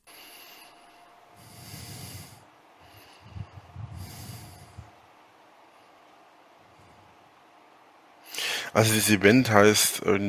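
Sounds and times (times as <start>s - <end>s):
man's heavy snorting breaths while sitting: 0.0s - 5.0s
speech: 8.7s - 10.2s.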